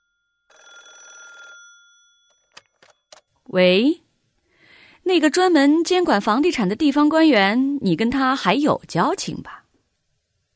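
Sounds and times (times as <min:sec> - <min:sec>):
old-style telephone bell trilling: 0:00.0 - 0:03.0
speech: 0:03.5 - 0:04.0, 0:05.1 - 0:09.6.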